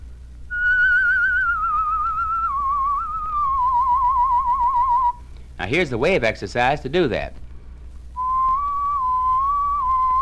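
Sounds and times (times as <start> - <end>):
single clear human whistle with fine tremolo: 0.5 - 5.2, 8.2 - 10.2
speech: 5.7 - 7.4.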